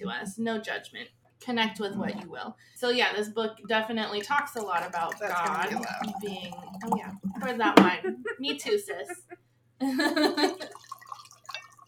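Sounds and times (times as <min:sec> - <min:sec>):
speech: 0:00.0 - 0:09.2, 0:09.8 - 0:10.9
wine poured from a bottle into a glass: 0:01.8 - 0:02.3, 0:03.7 - 0:08.0, 0:10.4 - 0:11.8
laughter: 0:07.4 - 0:10.7.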